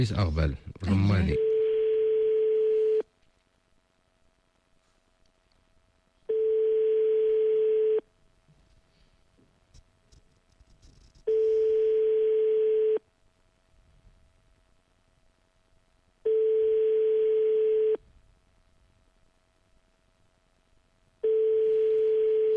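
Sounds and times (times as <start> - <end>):
speech: 0.0 - 1.5
telephone ringback tone on an unanswered call: 1.4 - 3.0, 6.3 - 8.0, 11.3 - 13.0, 16.2 - 18.0, 21.2 - 22.5.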